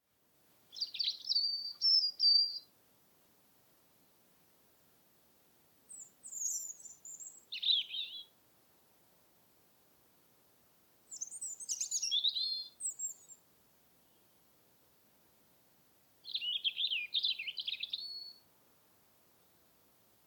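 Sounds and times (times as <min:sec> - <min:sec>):
European robin Erithacus rubecula: 0:00.7 - 0:02.8, 0:05.8 - 0:08.4, 0:11.0 - 0:14.5, 0:16.2 - 0:18.5.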